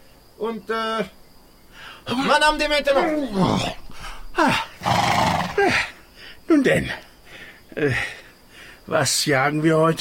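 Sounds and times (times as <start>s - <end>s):
speech: 0.4s - 1.2s, 2.0s - 3.8s, 4.4s - 5.0s, 6.5s - 7.0s, 7.7s - 8.2s, 8.9s - 9.9s
royal horse saddled for a hunt whinnying: 4.4s - 5.8s.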